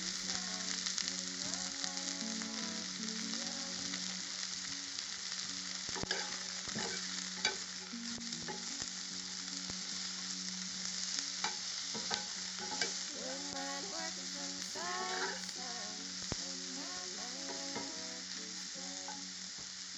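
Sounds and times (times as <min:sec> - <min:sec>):
peppers, garlic and onion sizzling in a hot pan: 0:00.0 - 0:19.9
utensil stirring and scraping vegetables in a pan: 0:06.0 - 0:07.6, 0:11.4 - 0:13.0.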